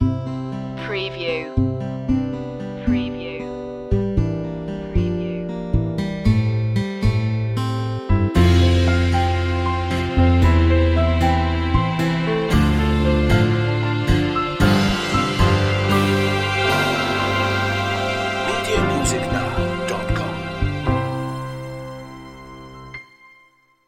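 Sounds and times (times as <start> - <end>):
music without drums: 0.0 - 23.8.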